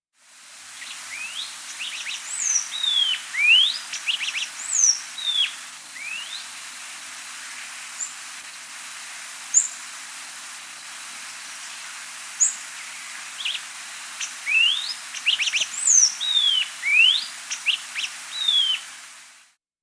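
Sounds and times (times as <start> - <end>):
Black-goggled tanager Trichothraupis melanops calling in the Andes of South America: 1.1 - 6.4, 13.4 - 19.0.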